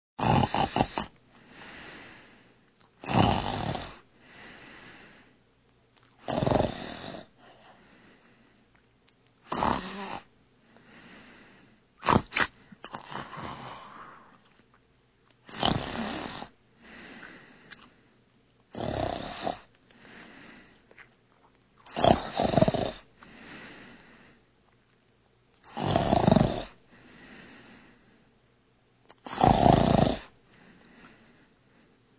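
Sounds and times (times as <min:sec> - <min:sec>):
snoring: 0:00.2 - 0:02.3, 0:03.0 - 0:05.2, 0:06.2 - 0:07.8, 0:09.5 - 0:10.3, 0:10.9 - 0:14.4, 0:15.5 - 0:17.5, 0:18.7 - 0:20.7, 0:21.9 - 0:24.0, 0:25.7 - 0:27.9, 0:29.2 - 0:31.2.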